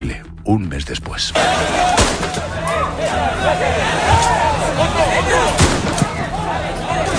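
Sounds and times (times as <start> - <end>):
speech: 0.5 - 5.6
gunshots fired into the air: 1.4 - 2.5, 5.6 - 6.1
dense agitated crowd of many shouting voices: 1.4 - 7.1.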